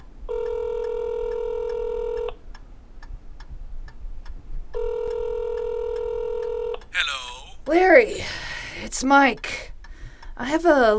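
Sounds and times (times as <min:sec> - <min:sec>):
telephone steady electronic dial tone: 0:00.3 - 0:02.3, 0:04.8 - 0:06.7
speech: 0:07.7 - 0:09.7, 0:10.4 - 0:10.9.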